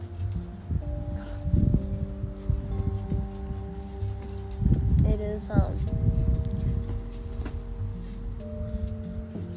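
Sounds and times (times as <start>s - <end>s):
shade structure creaking and groaning in the wind: 0.0s - 9.5s
speech: 5.3s - 5.8s.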